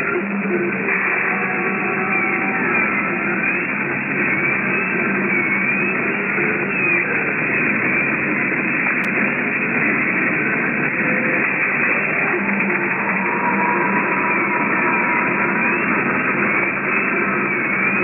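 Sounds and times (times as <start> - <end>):
motor generators humming as they start up: 0.1 - 18.0.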